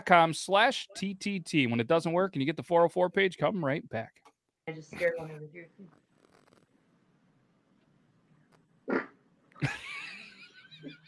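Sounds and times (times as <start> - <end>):
speech: 0.1 - 6.0
woman farting: 8.8 - 9.3
laughter: 9.6 - 11.0.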